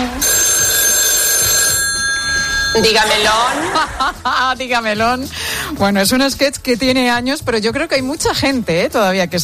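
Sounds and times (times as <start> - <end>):
telephone ringing: 0.2 - 3.9
speech: 2.8 - 9.4
laughter: 3.3 - 4.6.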